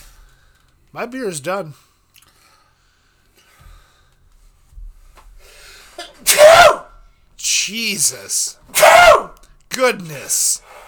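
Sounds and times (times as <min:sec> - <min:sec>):
speech: 0:00.9 - 0:01.9, 0:07.7 - 0:10.7
sneeze with wheezy intake of breath: 0:06.0 - 0:07.0, 0:08.7 - 0:09.4.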